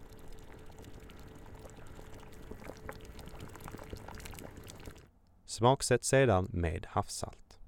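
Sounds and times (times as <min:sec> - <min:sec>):
small bubbling clicks: 0:00.0 - 0:05.1
water pouring into a pot of cooking rice: 0:00.0 - 0:05.1
speech: 0:05.6 - 0:07.4.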